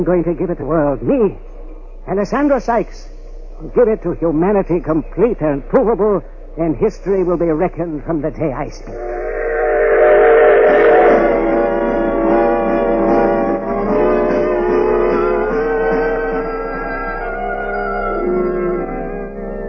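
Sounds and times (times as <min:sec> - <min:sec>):
speech: 0:00.0 - 0:09.2
train rumbling along the rails: 0:08.9 - 0:19.6.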